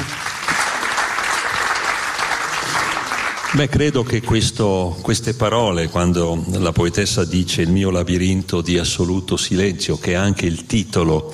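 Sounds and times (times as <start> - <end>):
audience applause at a poetry reading: 0.0 - 4.0
speech: 3.6 - 11.3.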